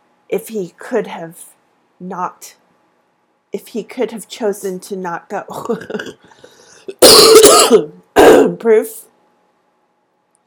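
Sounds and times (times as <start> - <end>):
speech: 0.3 - 2.6, 3.5 - 9.1
person coughing with raspy throat-clearing: 5.6 - 6.3, 6.9 - 8.6.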